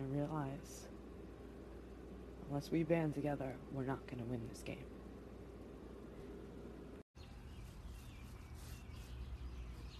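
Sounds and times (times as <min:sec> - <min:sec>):
speech: 0:00.0 - 0:01.0, 0:02.5 - 0:05.0
steady outdoor hum: 0:00.0 - 0:09.9
birds chirping at night: 0:07.2 - 0:09.9.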